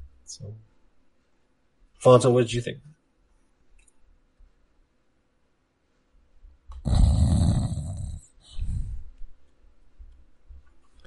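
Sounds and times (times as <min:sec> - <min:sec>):
speech: 0:00.3 - 0:00.7, 0:02.0 - 0:03.0
person snoring loudly: 0:06.8 - 0:08.7.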